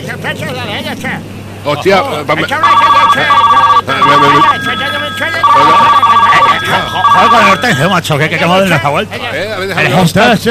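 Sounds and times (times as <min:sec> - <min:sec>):
voices murmuring and talking: 0:00.0 - 0:10.4
speech: 0:00.1 - 0:10.4
telephone ringing in trilling bursts: 0:02.5 - 0:08.1.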